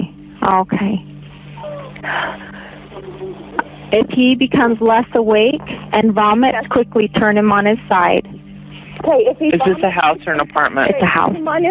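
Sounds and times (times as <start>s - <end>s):
speech: 0.4s - 1.1s, 2.0s - 8.4s, 9.0s - 11.6s
baby whimpering through a muffled phone line: 1.6s - 3.8s.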